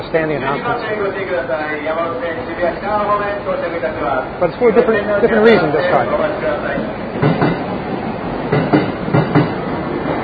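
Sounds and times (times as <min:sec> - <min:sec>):
train rumbling arriving at station: 0:00.0 - 0:10.2
speech: 0:00.1 - 0:07.5
train wheels clacking over rail joints: 0:06.0 - 0:10.2.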